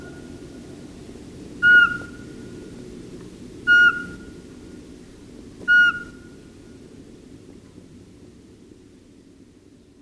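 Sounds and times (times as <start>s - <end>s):
low background rumble: 0.0s - 10.0s
Eurasian Pygmy Owl giving whistled hoots: 1.6s - 2.3s, 3.7s - 4.3s, 5.7s - 6.4s.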